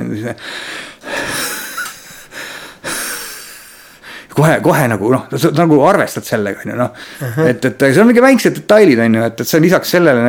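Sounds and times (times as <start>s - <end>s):
speech: 0.1s - 1.1s, 4.4s - 10.2s
person imitating heavy labored raspy breathing: 0.4s - 4.3s, 7.0s - 7.4s.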